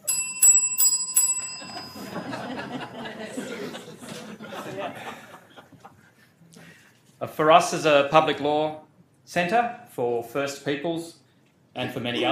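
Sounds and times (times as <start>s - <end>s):
small timekeeper's bell ringing: 0.0s - 2.4s
laughter: 1.6s - 6.3s
speech: 7.3s - 11.2s, 11.8s - 12.3s.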